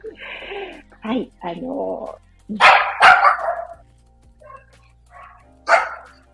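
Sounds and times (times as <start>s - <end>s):
speech: 1.0s - 3.1s
dog barking as dogs pass by during the morning walk: 2.6s - 3.8s, 4.5s - 6.2s.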